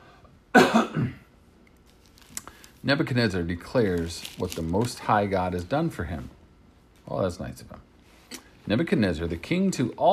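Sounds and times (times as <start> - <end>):
person coughing: 0.5 - 1.3
speech: 2.8 - 6.4, 7.1 - 7.9, 8.7 - 10.1.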